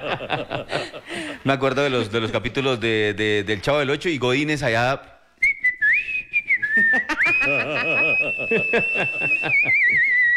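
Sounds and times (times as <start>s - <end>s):
laughter and chuckling: 0.0s - 1.4s, 6.8s - 10.2s
speech: 0.0s - 5.1s, 6.8s - 10.1s
person whistling a warbling birdlike tune imitating a canary: 5.4s - 10.3s.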